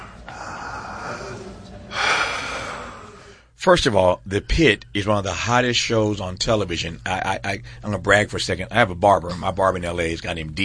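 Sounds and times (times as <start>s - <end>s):
deep breath drawn in sharply: 0.0s - 3.5s
speech: 3.6s - 10.6s.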